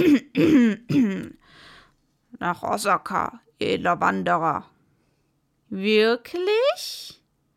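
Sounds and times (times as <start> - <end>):
person clearing throat: 0.0 - 1.4
soft breathy exhale: 1.4 - 1.9
speech: 2.4 - 4.7, 5.7 - 7.2.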